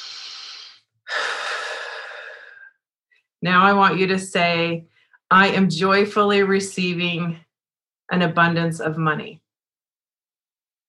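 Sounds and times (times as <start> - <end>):
deep human breath: 0.0 - 2.8
speech: 3.4 - 7.4, 8.1 - 9.4.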